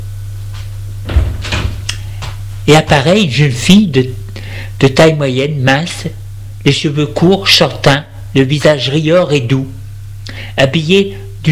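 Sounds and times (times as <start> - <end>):
door opening with a low creak: 1.0 - 1.9
soft thuds of door: 1.0 - 2.4
speech: 2.7 - 4.2, 4.8 - 9.8, 10.6 - 11.5.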